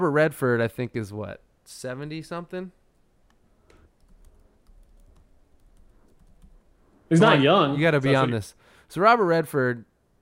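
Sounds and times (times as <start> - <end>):
speech: 0.0 - 2.8, 7.1 - 9.9
typing on a computer keyboard: 3.3 - 6.7.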